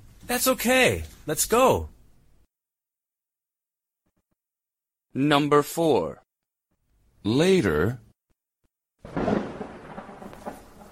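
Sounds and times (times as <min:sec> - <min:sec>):
speech: 0:00.3 - 0:01.9, 0:05.2 - 0:06.2, 0:07.2 - 0:08.0
steady rain: 0:09.1 - 0:10.8.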